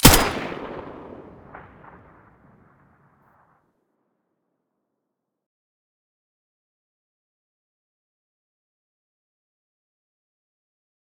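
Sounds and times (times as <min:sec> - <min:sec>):
M4A1 muzzle blast in stereo: 0:00.0 - 0:02.0.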